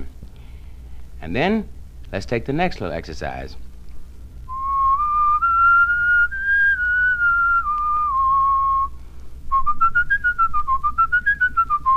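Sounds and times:
low hum: 0.0s - 11.9s
speech: 1.2s - 3.7s
person whistling a melodic line as a legato and staccato exercise: 4.5s - 11.9s.

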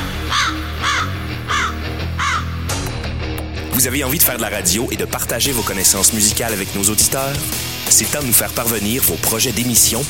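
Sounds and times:
crow cawing: 0.0s - 2.7s
speech: 3.8s - 10.0s.

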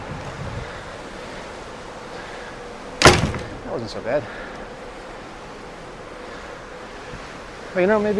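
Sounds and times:
wind on ship's open deck: 0.0s - 8.1s
sharp loud bang of a heavy door: 3.0s - 3.8s
speech: 3.7s - 4.5s, 7.7s - 8.1s.

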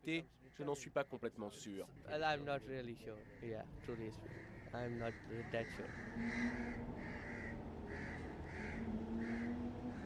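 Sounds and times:
speech: 0.0s - 7.2s
constant low hum: 1.7s - 10.0s
crows cawing: 3.0s - 10.0s.

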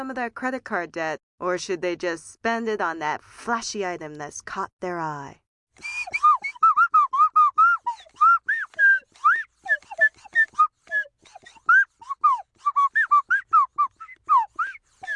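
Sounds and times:
speech: 0.0s - 6.2s
slide whistle being played: 5.8s - 11.1s, 11.7s - 15.1s.

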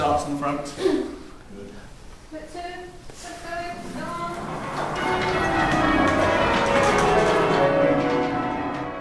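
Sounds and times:
speech: 0.2s - 3.1s
church bells rung in quick succession: 3.8s - 8.9s.

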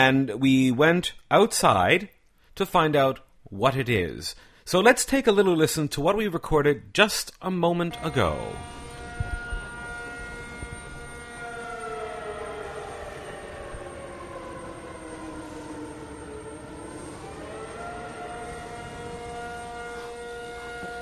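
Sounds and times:
speech: 0.0s - 8.8s
air raid siren wailing during an annual citywide drill in Taipei: 7.9s - 21.0s.

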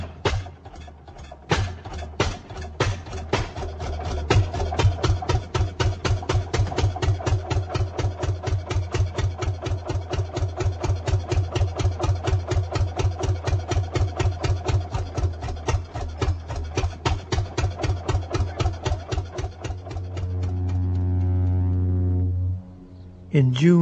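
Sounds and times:
single-cylinder engine driving a belt-run saw: 0.0s - 21.8s
low mechanical hum of a belt-run saw: 0.0s - 23.7s
sustained droning whine: 19.6s - 23.7s
speech: 23.4s - 23.7s.

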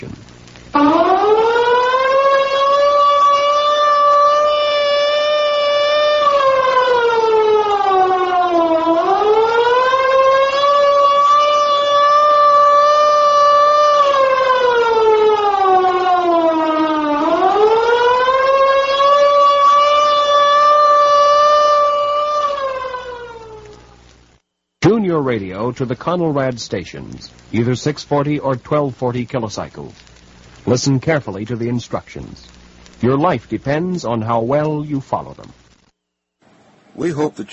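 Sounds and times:
civil defense take-cover siren wailing tone: 0.7s - 24.1s
speech: 25.8s - 30.1s, 30.7s - 35.6s, 37.0s - 37.5s.

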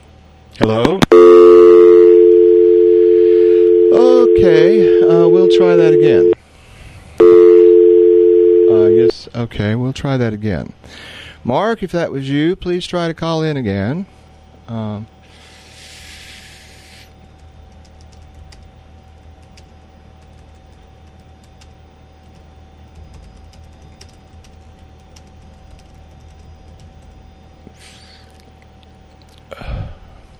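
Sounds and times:
low electrical hum: 0.0s - 30.3s
speech: 0.6s - 1.3s, 3.9s - 6.4s, 9.1s - 15.2s
fingers typing on a computer keyboard: 17.7s - 27.2s.

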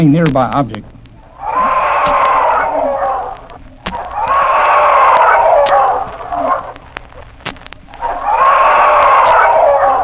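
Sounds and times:
speech: 0.0s - 1.0s
sharp clicks: 0.0s - 10.0s
chickens screaming hawk alarm calls: 1.3s - 6.9s, 7.9s - 10.0s.

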